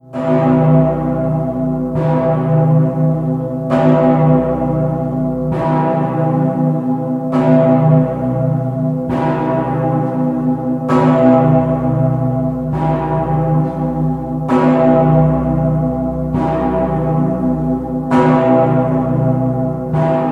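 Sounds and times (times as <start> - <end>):
Cologne Cathedral St. Peter's bell ringing: 0.0 - 20.3.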